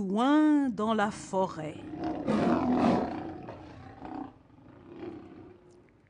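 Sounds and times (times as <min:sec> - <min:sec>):
speech: 0:00.0 - 0:03.0
lion roaring: 0:01.8 - 0:05.7.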